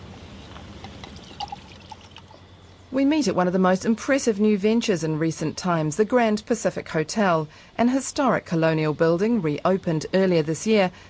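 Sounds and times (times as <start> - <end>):
bottled water pouring into a glass: 0.9 - 2.4
speech: 2.9 - 11.0.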